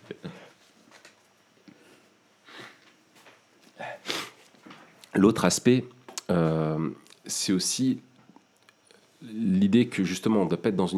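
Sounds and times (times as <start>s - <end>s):
quiet sniffling: 1.7s - 2.9s, 3.7s - 4.5s
person blowing nose: 2.5s - 2.8s, 3.8s - 4.5s
speech: 5.2s - 8.1s, 9.6s - 10.9s.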